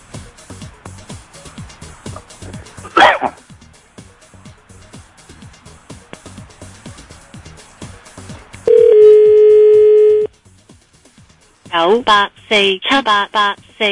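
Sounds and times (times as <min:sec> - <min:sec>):
steady electronic phone tone: 0:08.7 - 0:10.3
speech: 0:11.8 - 0:13.9.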